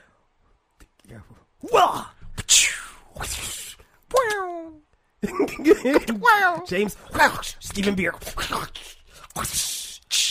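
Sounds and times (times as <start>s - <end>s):
speech: 1.1s - 3.6s, 5.6s - 9.7s
voice imitating a whip crack: 1.6s - 4.7s, 7.7s - 10.2s.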